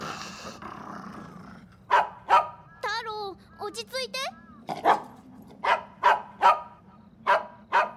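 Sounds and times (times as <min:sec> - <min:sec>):
dog growling low toward a forest path: 0:00.0 - 0:01.9
dog barking sharply: 0:01.9 - 0:02.6, 0:04.7 - 0:07.9.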